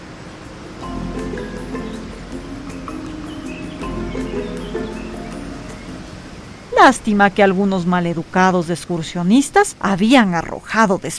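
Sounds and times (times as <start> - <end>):
flowing stream rushing and burbling: 0.0 - 9.4
speech: 6.8 - 11.1.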